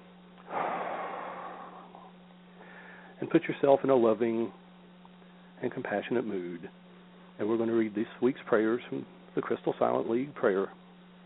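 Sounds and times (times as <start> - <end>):
steady low hum: 0.0 - 11.2
deep breath exhaled: 0.5 - 3.2
speech: 3.2 - 4.6, 5.6 - 6.8, 7.4 - 10.8.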